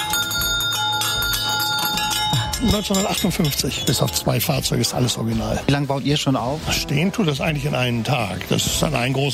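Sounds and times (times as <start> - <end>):
original 1950s fire engine bell on a nostalgia carousel ringing: 0.0 - 4.3
speech: 2.6 - 9.3.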